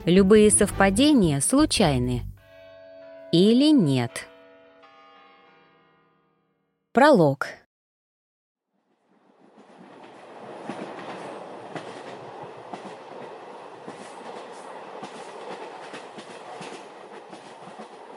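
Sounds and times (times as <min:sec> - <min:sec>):
speech: 0:00.0 - 0:02.3, 0:03.3 - 0:04.3, 0:07.0 - 0:07.6
electric commuter train clattering along rails: 0:09.1 - 0:18.1.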